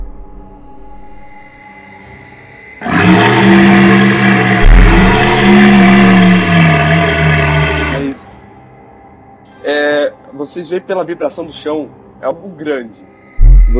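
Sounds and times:
large beast roaring: 2.8 - 8.2
speech: 10.5 - 13.7.

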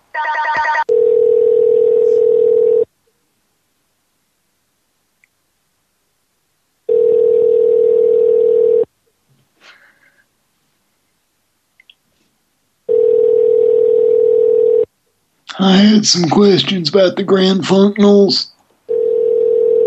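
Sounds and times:
faint small noises: 0.0 - 19.8
telephone ringback tones: 0.1 - 2.9, 6.9 - 8.9, 12.9 - 14.9, 18.9 - 19.8
speech: 16.0 - 18.5.

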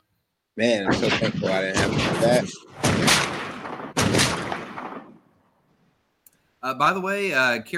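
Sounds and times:
speech: 0.5 - 3.3, 6.7 - 7.7
gunshot sound effects with decay: 0.9 - 5.4.

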